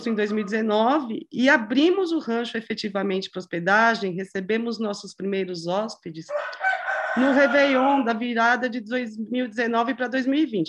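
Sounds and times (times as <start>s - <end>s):
speech: 0.0s - 10.6s
rooster crowing: 6.3s - 8.1s.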